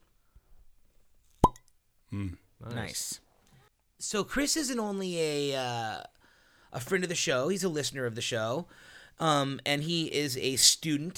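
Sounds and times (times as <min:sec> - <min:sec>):
cork popped from whiskey bottle: 0:01.4 - 0:01.7
speech: 0:02.1 - 0:03.2, 0:04.0 - 0:06.1, 0:06.7 - 0:11.1.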